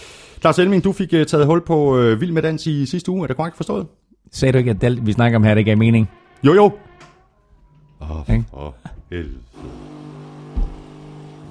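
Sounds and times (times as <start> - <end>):
speech: 0.4 - 6.8, 8.0 - 10.1
coffee machine brewing coffee: 9.5 - 11.4
dull knock: 10.6 - 10.8.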